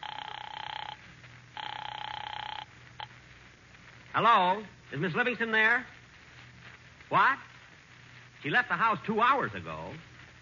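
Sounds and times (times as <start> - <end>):
telephone ringing in electronic bursts: 0.0 - 3.1
low hum: 0.0 - 10.4
speech: 4.2 - 6.0, 7.1 - 7.5, 8.4 - 10.1.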